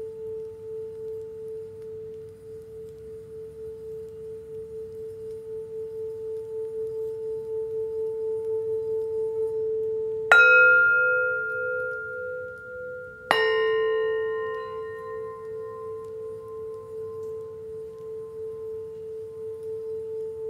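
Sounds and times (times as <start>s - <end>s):
singing bowl humming: 0.0s - 20.4s
singing bowl struck: 10.3s - 20.4s.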